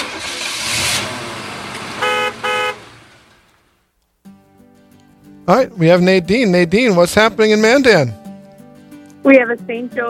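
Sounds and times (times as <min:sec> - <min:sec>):
car engine pulling away: 0:00.0 - 0:03.8
car horn honks: 0:01.9 - 0:03.0
speech: 0:05.5 - 0:08.2, 0:09.2 - 0:10.0.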